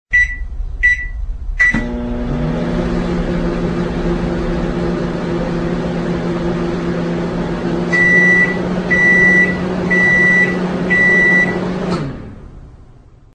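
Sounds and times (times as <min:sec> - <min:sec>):
microwave oven running: 0:00.1 - 0:13.3.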